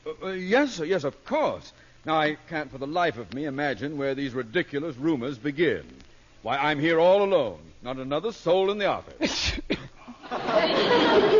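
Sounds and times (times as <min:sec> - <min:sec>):
hissy murmuring noise: 0:00.0 - 0:11.3
speech: 0:00.2 - 0:09.6
person sneezing: 0:09.2 - 0:10.2
laughter: 0:10.0 - 0:11.3.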